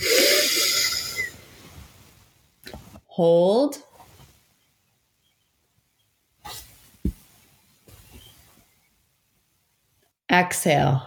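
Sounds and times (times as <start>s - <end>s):
deep breath in through the nose close to the microphone: 0.0s - 1.8s
speech: 3.2s - 3.9s, 10.4s - 11.0s.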